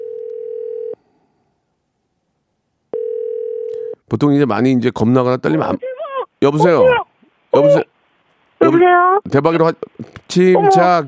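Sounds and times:
telephone dial tone while placing a live call: 0.0s - 1.0s, 3.0s - 4.0s
speech: 4.1s - 7.9s, 8.6s - 11.0s.

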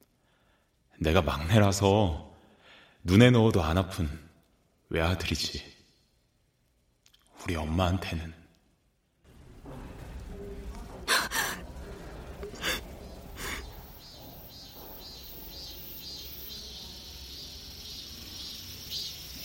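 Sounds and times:
speech: 1.0s - 2.3s, 3.0s - 4.3s, 4.9s - 5.8s, 7.4s - 8.4s
cicadas buzzing outside a window: 12.6s - 19.4s.

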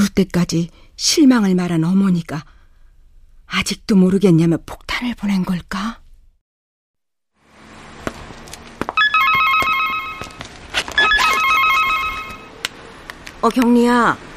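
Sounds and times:
speech: 0.2s - 2.6s, 3.5s - 6.0s, 13.4s - 14.3s
telephone ringing in bright warbling bursts: 9.0s - 10.4s, 11.0s - 12.6s.

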